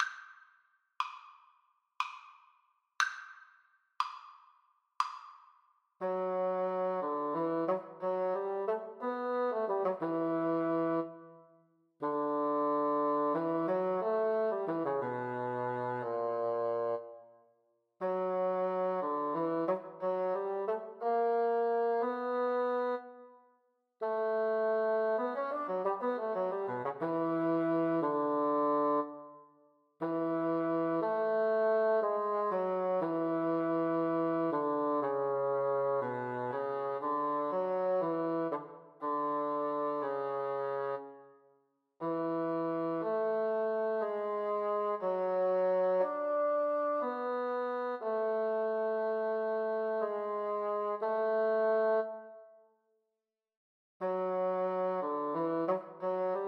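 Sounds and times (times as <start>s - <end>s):
adagio bassoon duet: 6.0s - 11.2s, 12.0s - 17.2s, 18.0s - 23.2s, 24.0s - 29.2s, 30.0s - 41.1s, 42.0s - 52.4s, 54.0s - 56.4s.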